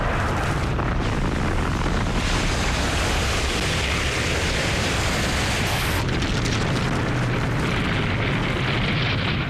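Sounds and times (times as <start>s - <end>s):
volcanic eruptions on the early Earth rumbling: 0.0s - 9.4s.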